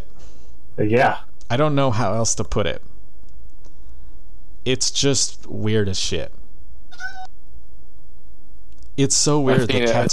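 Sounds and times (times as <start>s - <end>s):
speech: 0.8s - 2.9s, 4.6s - 6.4s, 9.0s - 10.1s
cat meowing: 6.9s - 7.3s
laughter: 9.4s - 10.1s.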